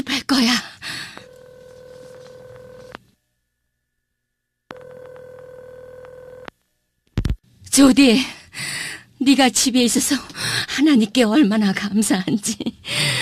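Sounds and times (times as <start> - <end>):
speech: 0.2 - 0.7, 7.8 - 8.4, 9.2 - 13.0
long steady electronic buzzing telephone line tones: 1.2 - 3.0, 4.7 - 6.5.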